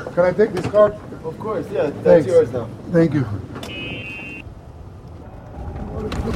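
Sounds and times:
small golf cart driving across a golf course in Miami Beach: 0:00.0 - 0:06.3
speech: 0:00.2 - 0:03.6
buffeting wind noise: 0:03.4 - 0:06.3.

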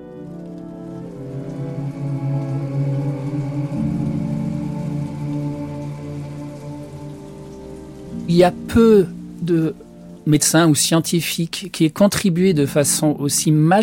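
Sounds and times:
heavy rain drumming on a surface: 0:00.0 - 0:13.8
speech: 0:08.3 - 0:13.8.

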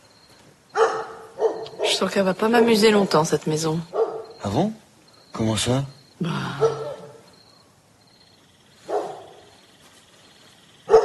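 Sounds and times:
dog barking: 0:00.7 - 0:02.0, 0:03.9 - 0:04.4, 0:06.6 - 0:07.3, 0:08.8 - 0:09.5, 0:10.9 - 0:11.0
speech: 0:02.0 - 0:06.8.

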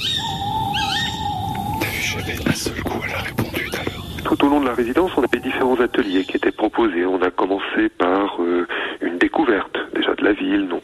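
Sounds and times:
tawny owl hooting in the Kéroumen wood in the evening: 0:00.0 - 0:06.7
hiss of woodland ambience in the Kéroumen wood: 0:00.0 - 0:10.8
faint whispered voices: 0:01.5 - 0:10.8
speech: 0:02.2 - 0:03.5, 0:04.3 - 0:10.8.

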